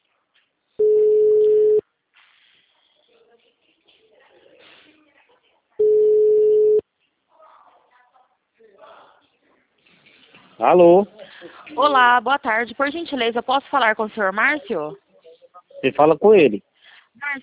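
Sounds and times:
telephone ringback tone as an outgoing call waits: 0.8 - 1.8, 5.8 - 6.8
speech: 10.6 - 15.0, 15.8 - 17.4.

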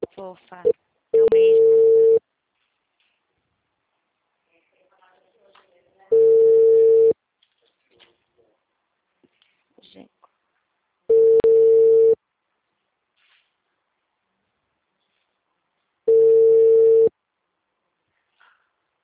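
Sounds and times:
speech: 0.2 - 0.8
telephone call tone beeps on a call routed to voicemail: 1.2 - 2.2, 6.1 - 7.2, 11.1 - 12.2, 16.1 - 17.1.

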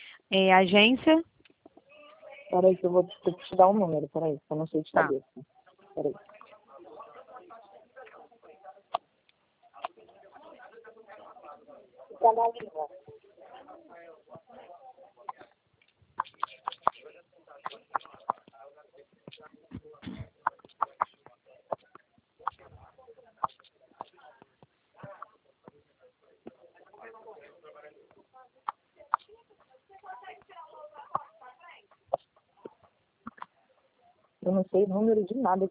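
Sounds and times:
speech: 0.3 - 1.3, 2.5 - 6.3, 12.2 - 13.1, 34.4 - 35.6
voices: 1.0 - 35.6
chicken clucking: 16.2 - 18.5, 19.2 - 24.2.

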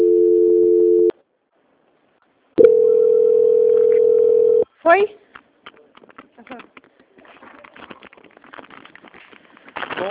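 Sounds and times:
telephone line tone during call transfer: 0.0 - 1.1, 2.6 - 4.6
speech: 4.8 - 5.2.

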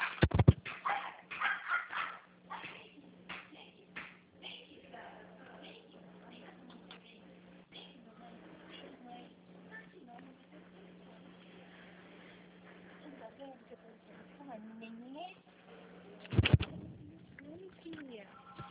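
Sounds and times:
dog barking: 0.0 - 2.8
steady low hum: 5.4 - 18.6.

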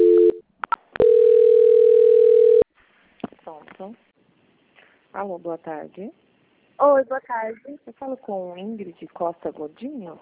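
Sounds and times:
telephone line tone during a bank call transfer: 0.0 - 0.4, 1.0 - 2.6
speech: 5.2 - 6.2, 6.8 - 10.2.

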